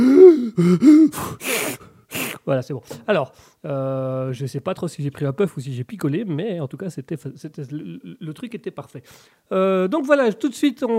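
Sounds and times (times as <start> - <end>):
person gasping for breath after coughing: 0.0 - 2.4
speech: 0.6 - 1.8, 2.4 - 10.9.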